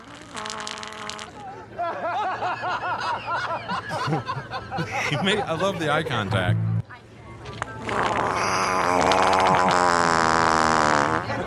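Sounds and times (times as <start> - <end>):
handheld fart machine fart noise: 0.0 - 1.3, 6.3 - 6.8, 7.8 - 11.4
laughter: 1.4 - 6.6, 9.1 - 10.0, 11.2 - 11.4
speech: 4.1 - 6.7
handheld fart machine click: 7.9 - 11.2.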